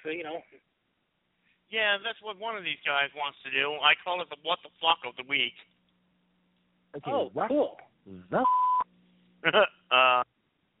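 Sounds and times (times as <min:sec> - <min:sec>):
speech: 0:00.0 - 0:00.7, 0:01.7 - 0:05.7, 0:06.9 - 0:08.7, 0:09.4 - 0:10.3
faint steady low hum: 0:00.0 - 0:10.7
electronic beeps: 0:08.4 - 0:08.9.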